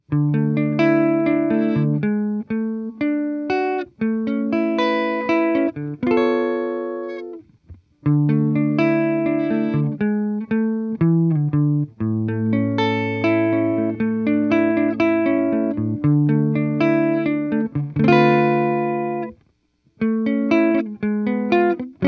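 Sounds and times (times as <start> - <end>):
chorus effect: 0.0 - 22.0.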